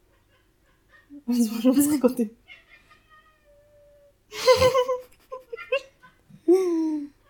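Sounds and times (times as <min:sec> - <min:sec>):
speech: 0:01.1 - 0:02.5
cat meowing at a fly: 0:02.4 - 0:04.1
laughter: 0:04.4 - 0:07.2.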